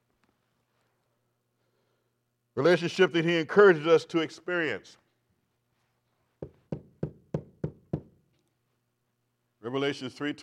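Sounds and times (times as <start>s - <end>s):
speech: 2.6s - 5.0s, 9.7s - 10.4s
knocking on a door: 6.4s - 8.2s.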